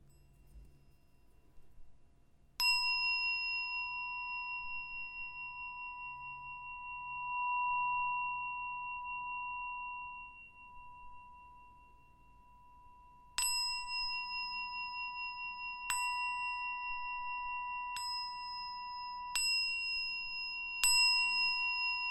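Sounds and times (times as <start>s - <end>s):
singing bowl: 0.0s - 1.8s, 2.6s - 22.0s.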